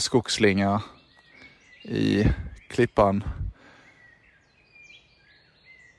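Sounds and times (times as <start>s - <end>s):
speech: 0.0s - 1.0s, 1.8s - 3.5s
birdsong whistles and trills on a forest trail: 0.0s - 5.9s.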